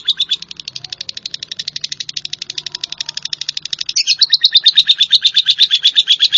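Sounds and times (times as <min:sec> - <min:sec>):
Java sparrow chirping: 0:00.0 - 0:06.3.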